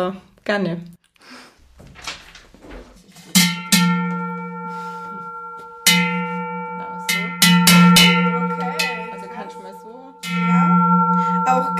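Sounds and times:
speech: 0:00.0 - 0:01.4
large heavy cowbell shaken by hand: 0:03.4 - 0:11.7.

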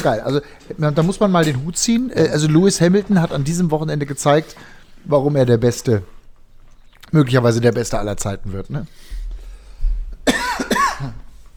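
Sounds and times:
speech: 0:00.0 - 0:06.2, 0:07.1 - 0:09.2
person coughing during a conversation: 0:10.2 - 0:11.3.

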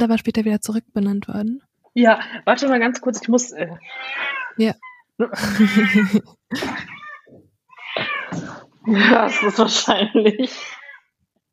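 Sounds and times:
speech: 0:00.0 - 0:07.0, 0:08.0 - 0:10.8
cat meowing: 0:03.8 - 0:05.1, 0:06.7 - 0:08.4, 0:10.6 - 0:11.2
laughter: 0:05.4 - 0:07.0, 0:08.9 - 0:10.8.

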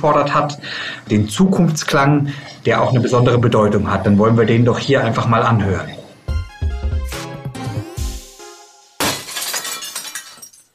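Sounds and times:
speech: 0:00.0 - 0:06.0
glass pane shattering: 0:09.0 - 0:10.7
tinkling splintering glass shards: 0:09.0 - 0:10.7.

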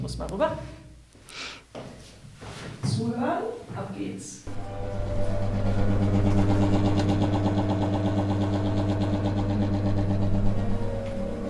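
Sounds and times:
speech: 0:00.1 - 0:00.8
clock mechanism whirring: 0:04.5 - 0:11.4.

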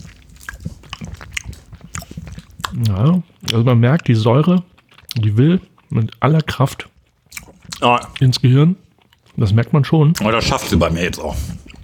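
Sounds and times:
biting and chewing on a sour candy: 0:00.0 - 0:11.8
speech: 0:02.8 - 0:06.9, 0:07.8 - 0:08.8, 0:09.4 - 0:11.6.

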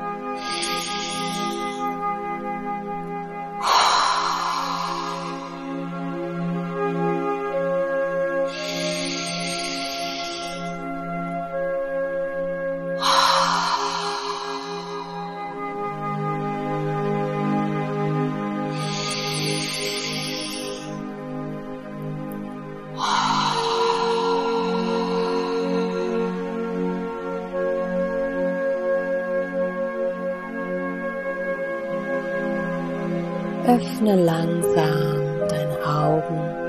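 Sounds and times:
steady sustained musical drone: 0:00.0 - 0:36.6
deep breaths in through the nose and out through the mouth: 0:00.4 - 0:02.1, 0:03.6 - 0:06.5, 0:08.4 - 0:10.9, 0:13.0 - 0:16.2, 0:18.7 - 0:21.1, 0:22.3 - 0:27.5
speech: 0:33.8 - 0:35.0.

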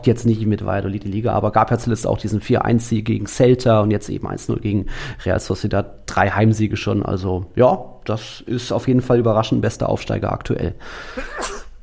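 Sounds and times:
speech: 0:00.0 - 0:11.6
sneeze: 0:11.3 - 0:11.8.

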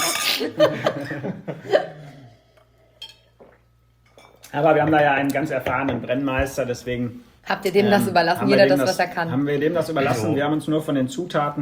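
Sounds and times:
speech: 0:00.4 - 0:02.0, 0:04.5 - 0:11.5
hearty laughter from a few people: 0:00.4 - 0:02.3
glasses clinking in a toast: 0:02.9 - 0:04.5.

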